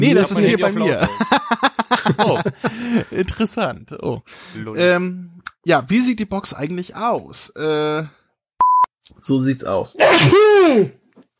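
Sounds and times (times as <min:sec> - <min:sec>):
speech: 0:00.0 - 0:08.2, 0:09.2 - 0:11.0
laughter: 0:00.2 - 0:03.3
single loud sneeze: 0:10.0 - 0:11.0.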